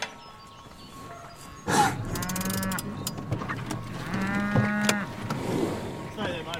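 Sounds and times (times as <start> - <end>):
steady outdoor hum: 0.0 - 6.5
grazing cattle mooing on the Bogan High Plains: 1.7 - 3.0, 3.9 - 5.3.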